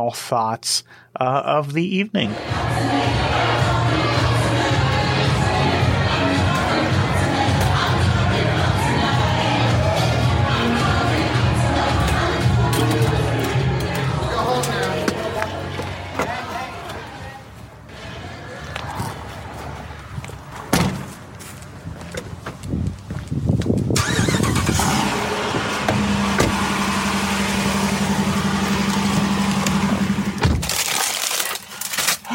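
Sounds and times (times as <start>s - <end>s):
speech: 0.0s - 4.3s
car engine starting and idling: 2.4s - 17.2s, 23.8s - 32.2s
noise: 13.4s - 21.3s
car door thudding shut: 20.7s - 21.1s, 25.9s - 26.6s, 30.4s - 30.7s.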